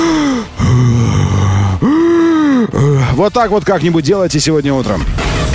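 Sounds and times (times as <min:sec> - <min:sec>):
sharp gasping inhale: 0:00.0 - 0:03.1
man doing deep breathing with voiced exhales: 0:00.0 - 0:03.2
speech: 0:03.2 - 0:05.4.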